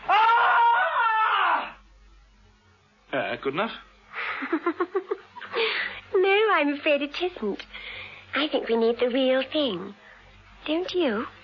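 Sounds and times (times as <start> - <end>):
loud shrill scream: 0.0 - 1.8
speech: 3.3 - 10.0, 10.6 - 11.4.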